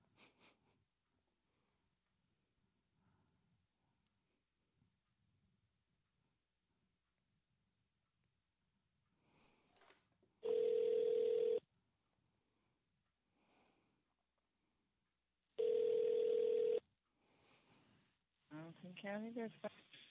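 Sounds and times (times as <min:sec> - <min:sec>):
phone line ringing through the receiver: 0:10.4 - 0:11.6, 0:15.6 - 0:16.8.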